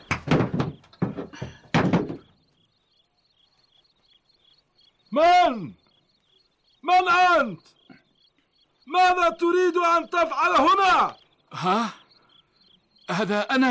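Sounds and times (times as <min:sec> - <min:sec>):
heavy thuds against a door being forced open: 0:00.0 - 0:02.4
faint crickets: 0:00.0 - 0:13.6
speech: 0:05.2 - 0:05.8, 0:06.9 - 0:07.8, 0:08.9 - 0:12.0, 0:13.1 - 0:13.6.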